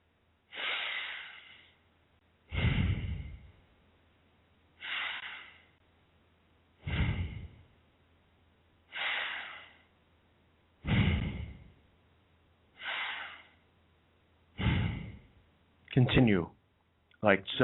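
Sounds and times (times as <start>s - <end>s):
slow deep breathing: 0.5s - 1.8s, 2.4s - 3.6s, 4.8s - 5.8s, 6.8s - 7.8s, 8.9s - 9.9s, 10.8s - 11.8s, 12.8s - 13.6s, 14.5s - 15.4s
speech: 16.0s - 16.6s, 17.2s - 17.6s.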